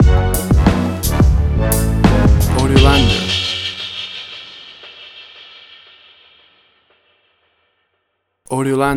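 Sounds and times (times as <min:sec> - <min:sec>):
turbulent orchestral hip hop stinger: 0:00.3 - 0:06.6.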